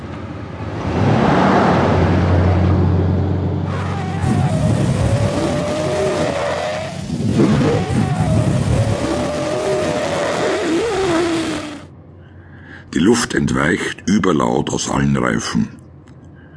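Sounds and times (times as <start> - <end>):
car engine revving and accelerating: 0.0 - 11.9
speech: 13.3 - 15.8.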